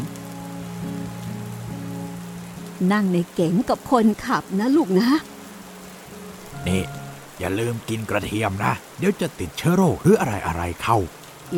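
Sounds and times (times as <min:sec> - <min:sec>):
light drizzling rain pattering: 0:00.0 - 0:11.5
speech: 0:02.8 - 0:05.3, 0:06.6 - 0:11.5.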